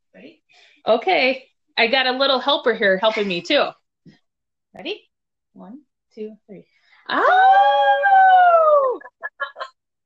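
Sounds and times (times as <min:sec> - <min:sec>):
speech: 0:00.8 - 0:09.6
person imitating a wolf howl with yipping bursts: 0:07.1 - 0:09.1.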